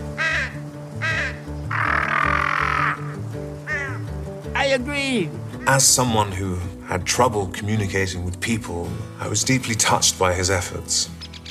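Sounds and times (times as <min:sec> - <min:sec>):
harsh raspy bird calls: 0:00.0 - 0:06.2, 0:11.1 - 0:11.4
steady low rhythmic backing of tones: 0:00.0 - 0:11.2
speech: 0:04.7 - 0:11.3.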